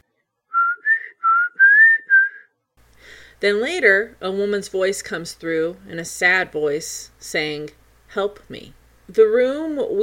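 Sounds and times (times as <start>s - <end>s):
wavering whistle through spirit box: 0.5s - 2.5s
faint radio-like hiss from spirit box: 2.8s - 10.0s
speech: 3.4s - 10.0s.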